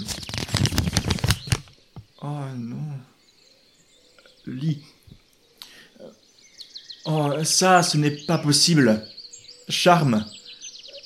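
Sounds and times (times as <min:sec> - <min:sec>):
sheet of paper being unfolded: 0:00.0 - 0:01.7
speech: 0:02.2 - 0:03.1, 0:04.5 - 0:05.0, 0:07.1 - 0:09.1, 0:09.7 - 0:10.4.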